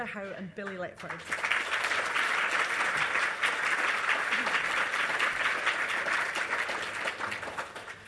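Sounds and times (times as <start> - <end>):
speech: 0.0 - 1.7
audience applause welcoming two poets: 1.0 - 8.0.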